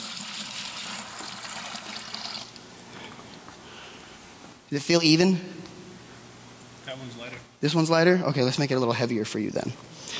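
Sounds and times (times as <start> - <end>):
water pouring into a container: 0.0 - 2.6
speech: 4.7 - 5.6, 6.9 - 10.1.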